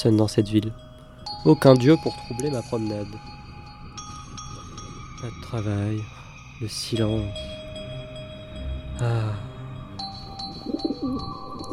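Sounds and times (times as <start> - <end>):
speech: 0.0 - 3.4, 5.2 - 7.6, 9.0 - 9.5
pigeon cooing in a quiet small town: 10.6 - 11.7.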